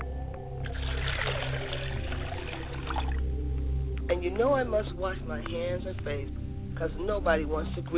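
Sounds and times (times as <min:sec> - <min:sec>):
water poured out as a libation in a steady trickle: 0:00.6 - 0:03.8
speech: 0:04.1 - 0:07.9.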